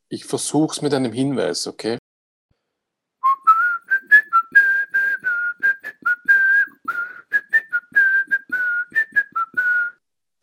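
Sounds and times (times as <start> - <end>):
speech: 0.1 - 2.0
person whistling a jazz melody: 3.2 - 10.0.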